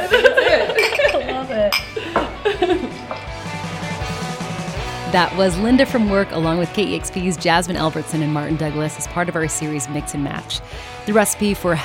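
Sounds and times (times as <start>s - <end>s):
several people chatting and laughing: 0.0s - 11.8s
bright glassy clink: 0.7s - 2.3s
speech: 5.1s - 11.8s.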